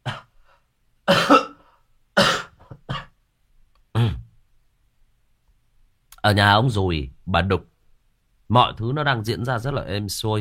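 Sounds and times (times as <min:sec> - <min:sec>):
ill person coughing harshly: 0:00.0 - 0:00.4, 0:01.1 - 0:03.2, 0:04.0 - 0:04.3
speech: 0:06.2 - 0:07.7, 0:08.5 - 0:10.3.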